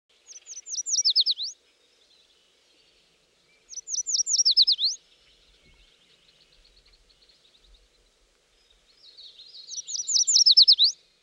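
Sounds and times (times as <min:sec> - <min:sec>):
yellow warbler birdsong: 0:00.1 - 0:11.0.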